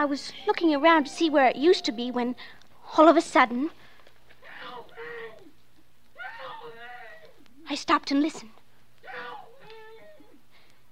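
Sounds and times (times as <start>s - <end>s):
speech: 0.0s - 3.8s, 7.7s - 8.6s
woman buried under junk dirt and glass wailing from underground: 4.4s - 7.8s, 9.0s - 10.4s.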